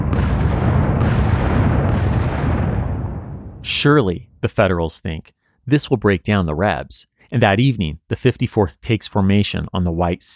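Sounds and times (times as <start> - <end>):
Union siege mortars firing at Fort Wagner: 0.0 - 3.7
sharp mortar blasts: 0.0 - 4.1
speech: 3.8 - 10.3.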